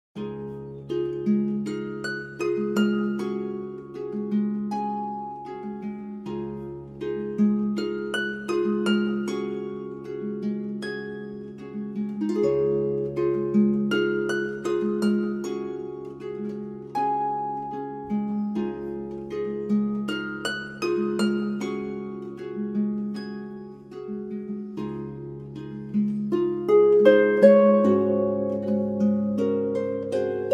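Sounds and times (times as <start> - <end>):
harp playing: 0.2 - 30.5.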